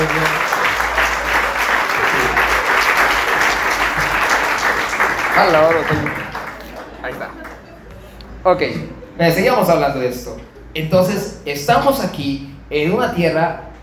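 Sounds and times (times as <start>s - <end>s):
audience applause: 0.0s - 7.7s
speech: 5.4s - 6.2s, 8.4s - 13.7s.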